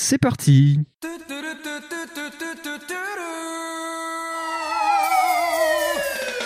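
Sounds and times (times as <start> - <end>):
speech: 0.1 - 1.0
police car siren: 4.3 - 6.4.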